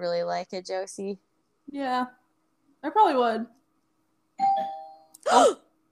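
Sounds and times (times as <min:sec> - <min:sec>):
speech: 0:00.0 - 0:02.2, 0:02.8 - 0:03.6, 0:04.4 - 0:05.6
doorbell chimes: 0:04.4 - 0:05.1.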